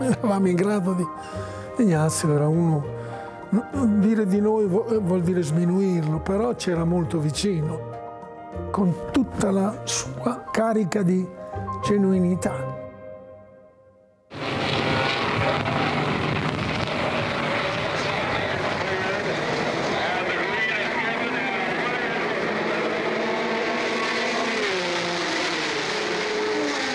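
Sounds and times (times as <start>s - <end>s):
speech: 0.0s - 7.9s, 8.5s - 12.7s
Ferrari, Porsche and Alfa Romeo race car engines roaring at race start: 14.4s - 26.9s.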